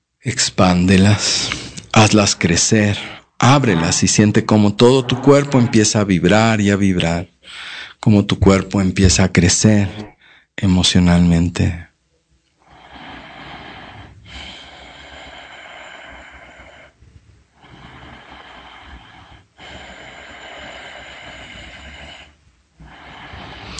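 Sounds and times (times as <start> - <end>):
speech: 0.2 - 11.9
slow deep breathing in and out during a guided relaxation: 2.8 - 6.0, 7.4 - 8.0, 10.1 - 10.5, 12.6 - 23.7.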